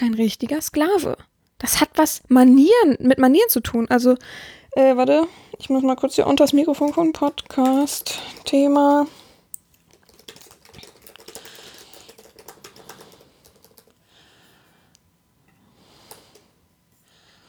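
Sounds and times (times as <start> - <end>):
speech: 0.0 - 9.2
typing on a keyboard while writing: 6.4 - 14.0.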